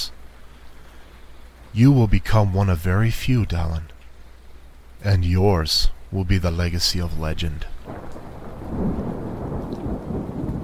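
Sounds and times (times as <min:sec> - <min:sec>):
rain: 0:00.0 - 0:10.6
speech: 0:01.7 - 0:03.9, 0:05.0 - 0:09.0
deep rolling peal of thunder: 0:07.8 - 0:10.6.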